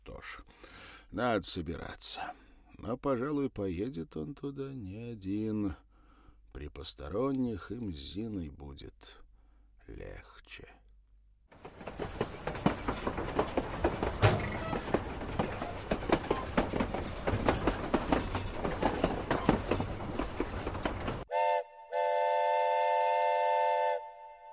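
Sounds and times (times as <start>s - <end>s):
speech: 1.1s - 5.9s, 6.6s - 9.2s, 9.9s - 10.8s
train car wheels clattering on rails: 11.6s - 21.3s
loud horn-like train whistle blasts: 21.3s - 24.5s.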